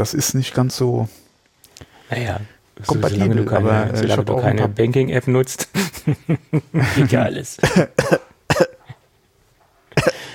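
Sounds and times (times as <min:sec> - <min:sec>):
speech: 0:00.0 - 0:01.2, 0:02.1 - 0:08.1
person coughing: 0:07.6 - 0:09.0, 0:10.0 - 0:10.3.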